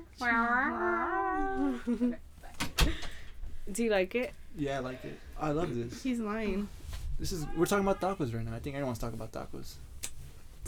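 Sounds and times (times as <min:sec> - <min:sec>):
person imitating a crying cat with yowls and meows: 0:00.0 - 0:01.9
speech: 0:00.1 - 0:00.9, 0:01.6 - 0:03.1, 0:03.7 - 0:09.9.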